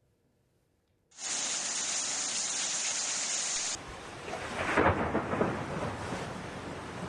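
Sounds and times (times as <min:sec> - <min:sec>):
heavy rain in Antalya Turkey: 0:01.2 - 0:07.0
thunder rolling through a downpour: 0:03.9 - 0:07.0.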